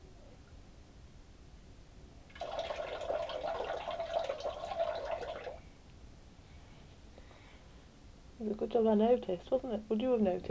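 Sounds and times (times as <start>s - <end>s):
steady stream of urine splashing into toilet water: 2.3s - 5.6s
speech: 8.6s - 10.4s.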